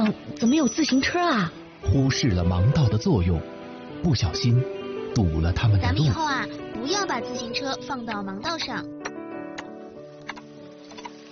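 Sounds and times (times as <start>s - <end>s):
speech: 0.1s - 9.0s
crisp keyboard clicks: 9.0s - 11.2s.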